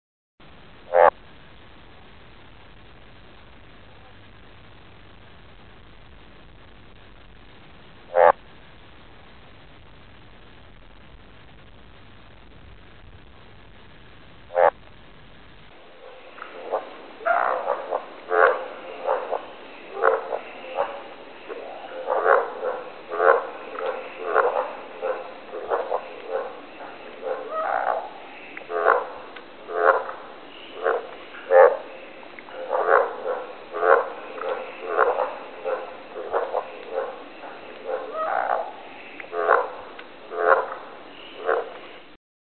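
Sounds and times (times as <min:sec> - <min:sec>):
frog in nature: 0:00.9 - 0:01.2, 0:08.1 - 0:08.4, 0:14.5 - 0:14.8, 0:15.8 - 0:42.2.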